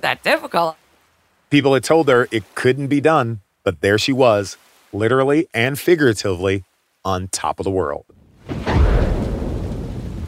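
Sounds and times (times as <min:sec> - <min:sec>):
speech: 0:00.0 - 0:00.8, 0:01.5 - 0:08.7
heavy downpour of rain: 0:00.0 - 0:10.2
thunder rumbling: 0:08.2 - 0:10.2.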